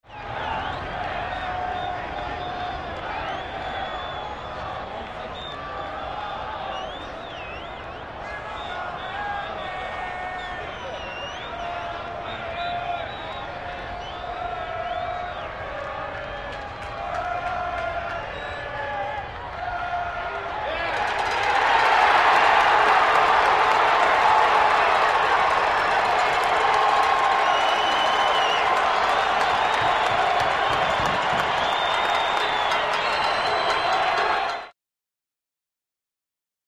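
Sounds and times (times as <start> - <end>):
arena crowd yelling and cheering in a sports arena: 0.0 - 34.7.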